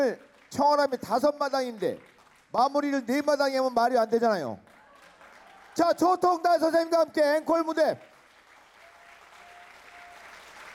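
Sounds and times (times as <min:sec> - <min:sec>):
speech: 0:00.0 - 0:04.7, 0:05.8 - 0:08.1
audience applause at an encore of a traditional Korean pansori singing performance: 0:04.7 - 0:06.4, 0:08.0 - 0:10.7.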